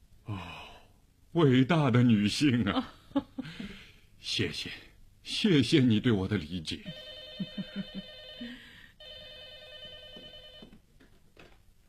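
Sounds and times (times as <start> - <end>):
speech: 1.3 - 7.9
telephone ringing: 6.9 - 10.8.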